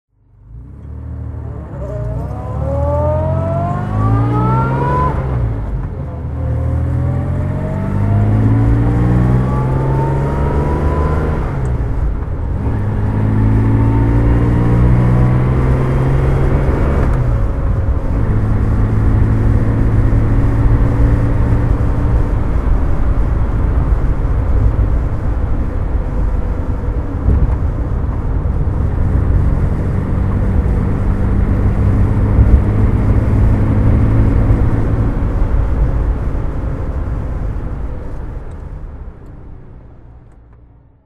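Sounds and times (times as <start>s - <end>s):
Jaguar XK150 DHC car engine driving: 0.1s - 41.0s.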